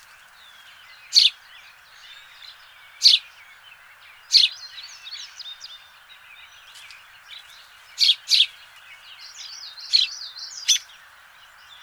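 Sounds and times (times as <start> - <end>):
house sparrow chirping: 0.0 - 1.4, 4.2 - 5.6, 6.3 - 11.0
soft house sparrow chatter: 0.0 - 11.8.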